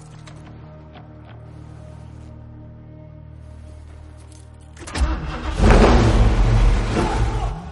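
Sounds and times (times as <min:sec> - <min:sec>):
1969 Ford Mustang engine starting and revving: 0:04.8 - 0:07.7.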